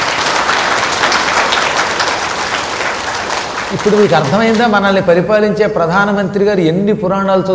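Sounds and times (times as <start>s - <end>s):
audience applause: 0.0s - 4.9s
speech: 3.7s - 7.5s.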